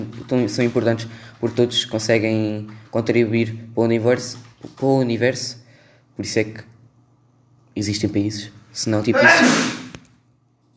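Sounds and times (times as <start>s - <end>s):
speech: 0.3s - 5.6s, 6.2s - 6.7s, 7.8s - 9.8s
person sneezing forcefully: 9.1s - 10.0s.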